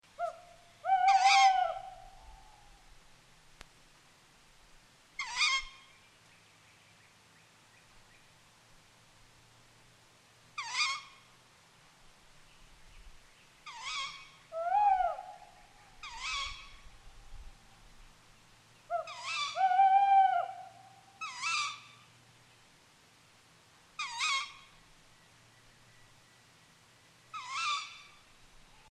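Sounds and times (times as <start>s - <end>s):
owl calling: 0.2s - 2.8s, 5.2s - 6.0s, 10.6s - 11.3s, 13.6s - 17.4s, 18.9s - 22.1s, 24.0s - 24.8s, 27.3s - 28.9s.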